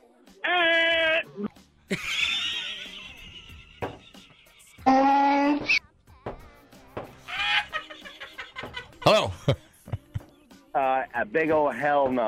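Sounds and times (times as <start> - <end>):
person imitating a donkey's hee-haw bray: 0.4 - 1.5, 4.8 - 5.8
speech: 1.4 - 2.2, 11.3 - 12.2
laughter: 1.9 - 4.9, 7.2 - 10.4.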